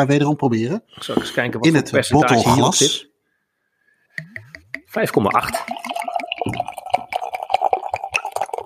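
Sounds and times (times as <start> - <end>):
speech: 0.0 - 3.1, 4.9 - 5.8
hoppy pale ale pouring into a glass: 5.1 - 8.6
bubbly fizzing of pale ale: 5.2 - 8.6.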